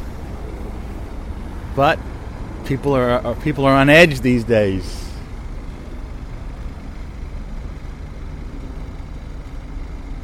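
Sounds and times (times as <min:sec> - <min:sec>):
road traffic with cars stopping and pulling away at a bus stop: 0:00.0 - 0:10.2
speech: 0:01.8 - 0:05.0.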